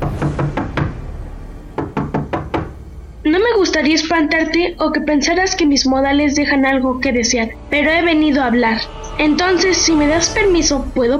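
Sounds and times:
sharp knocking on a door: 0.0s - 2.8s
speech: 3.8s - 11.1s.

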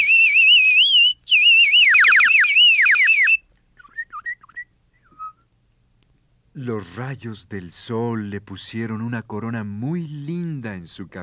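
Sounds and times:
birds singing in a garden: 0.0s - 5.3s
speech: 6.6s - 11.2s.

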